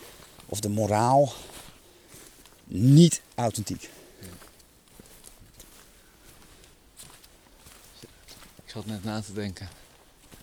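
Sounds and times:
constant hiss: 0.0 - 10.4
footsteps crunching outdoors at walking pace: 0.0 - 10.4
speech: 0.5 - 1.5, 2.7 - 4.4, 8.7 - 9.8.

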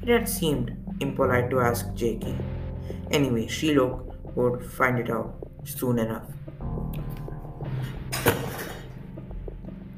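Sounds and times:
speech: 0.0 - 6.4
crooked chair creaking and shifting: 8.1 - 9.0.

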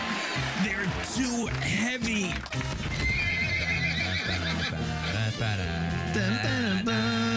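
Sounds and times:
speech: 0.6 - 3.2, 4.2 - 7.3
horses neighing: 2.9 - 5.2.

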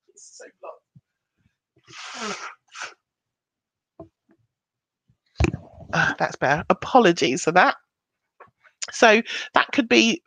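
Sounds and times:
person with a blocked nose blowing it: 1.9 - 3.0
sniffs and snorts: 1.9 - 3.0
speech: 6.2 - 7.8, 9.0 - 10.2.

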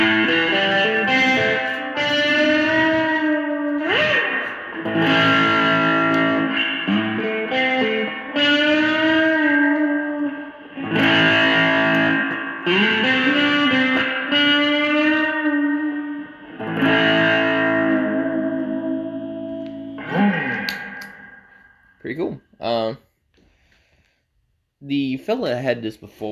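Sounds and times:
electric guitar through a fuzz distortion effect: 0.0 - 22.0
speech: 25.3 - 26.3.

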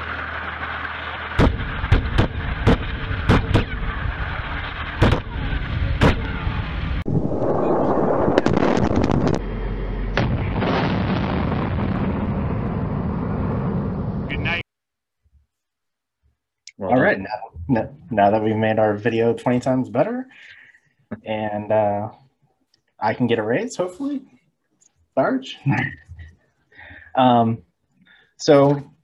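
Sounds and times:
sustained roaring rumble of a bigger detonation: 0.0 - 14.6
sharp loud explosion blasts: 1.3 - 14.6
speech: 18.2 - 20.5, 21.1 - 22.2, 23.0 - 24.4, 25.2 - 26.0, 27.2 - 27.7, 28.4 - 28.9.

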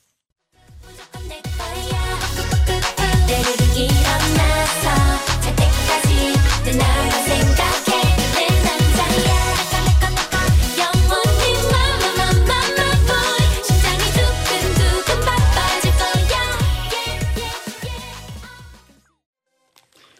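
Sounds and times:
upbeat K-pop girl group song with punchy beat: 0.6 - 18.9.

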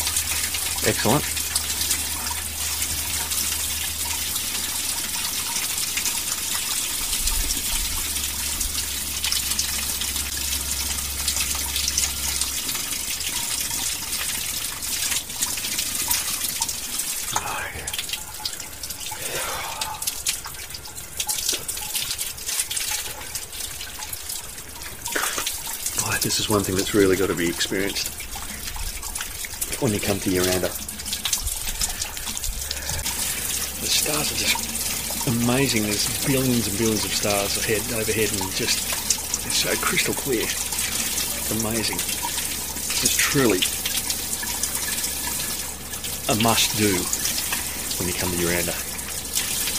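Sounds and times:
hot water from an outdoor shower rushing and splashing on a cold night: 0.0 - 49.7
speech: 0.8 - 1.4, 26.5 - 28.2, 29.8 - 30.9, 35.4 - 38.9, 39.6 - 40.7, 41.5 - 42.2, 43.3 - 43.8, 46.3 - 47.2, 48.1 - 48.9.

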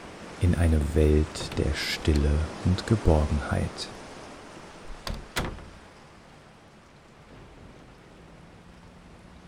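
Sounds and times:
steady hiss: 0.0 - 9.4
speech: 0.4 - 4.0
heavy wooden door opening: 1.2 - 2.6, 3.9 - 6.0
heavy wooden door latch clunk: 1.3 - 2.3, 4.8 - 5.9.

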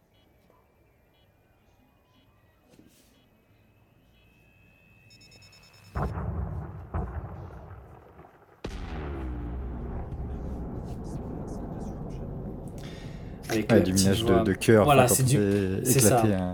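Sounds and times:
speech: 6.0 - 6.6, 13.5 - 16.5
heavy thuds: 6.0 - 13.7
long loud roaring rumble: 6.0 - 13.7
huge explosive crash of asteroid impact: 6.0 - 14.7
low rumbling of asteroid impact sound effect: 6.0 - 14.9.

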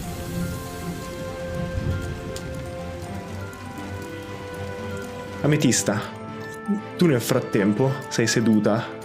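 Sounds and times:
heavy rain hitting surfaces: 0.0 - 6.3
speech: 5.4 - 9.0.

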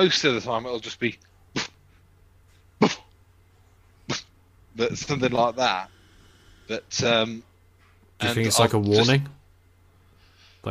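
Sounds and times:
speech: 0.0 - 1.7, 2.8 - 3.0, 4.8 - 6.0, 6.7 - 7.5, 8.2 - 9.4
person imitating a dog barking: 2.8 - 3.1.

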